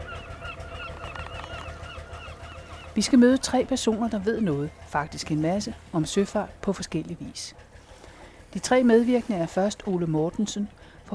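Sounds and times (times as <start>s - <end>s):
seagulls calling at a harbour: 0.0s - 6.3s
speech: 3.0s - 7.7s, 8.5s - 11.1s.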